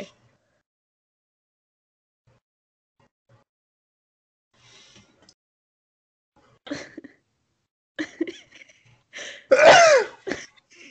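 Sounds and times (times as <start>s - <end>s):
sneeze: 9.5s - 10.3s.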